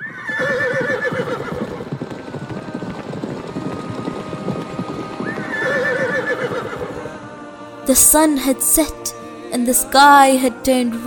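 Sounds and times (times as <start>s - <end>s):
horse neighing loudly: 0.0s - 1.9s, 5.2s - 7.0s
horse hooves clip-clopping: 0.3s - 7.3s
speech: 7.9s - 11.0s.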